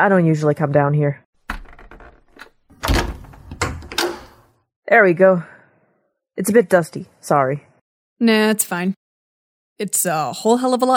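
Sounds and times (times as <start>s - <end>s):
speech: 0.0s - 1.2s, 4.9s - 5.5s, 6.4s - 9.0s, 9.8s - 10.9s
jammed door rattling and banging as it is forced open: 1.4s - 4.5s.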